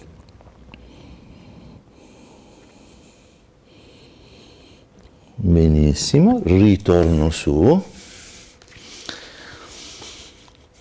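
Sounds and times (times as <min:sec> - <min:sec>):
slow deep breathing during a stretching exercise: 0:00.7 - 0:05.4, 0:08.0 - 0:10.8
speech: 0:05.4 - 0:07.9.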